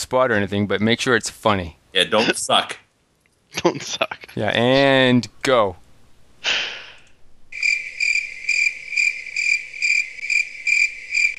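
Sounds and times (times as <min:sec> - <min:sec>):
speech: 0:00.1 - 0:02.8, 0:03.5 - 0:05.8, 0:06.4 - 0:06.8
crickets chirping: 0:07.5 - 0:11.3.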